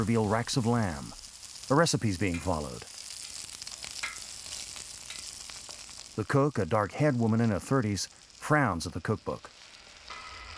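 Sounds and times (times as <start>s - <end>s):
speech: 0.0s - 3.0s, 6.2s - 9.6s
asparagus sizzling in a pan: 0.0s - 10.5s
small pops from asparagus sizzling in a pan: 2.3s - 6.0s.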